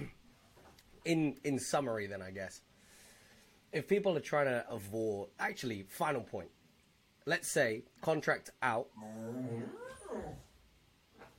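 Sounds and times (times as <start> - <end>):
speech: 1.0 - 2.7, 3.7 - 6.6, 7.2 - 10.5
dog whining: 9.0 - 10.6.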